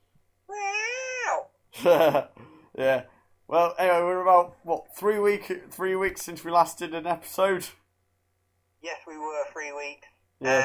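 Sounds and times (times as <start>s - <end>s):
person imitating a cat meow: 0.5s - 1.5s, 10.4s - 10.6s
speech: 1.8s - 7.8s, 8.8s - 10.6s.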